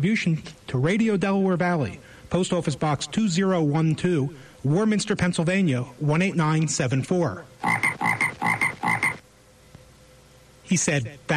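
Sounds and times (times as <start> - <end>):
speech: 0.0 - 8.2, 10.7 - 11.3
frog croaking: 7.6 - 9.2.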